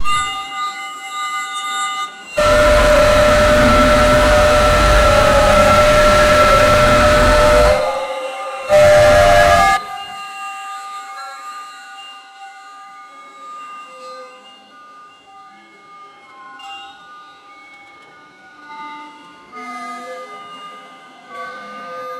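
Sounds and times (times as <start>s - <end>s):
emergency alert in a bunker: 2.4s - 10.1s.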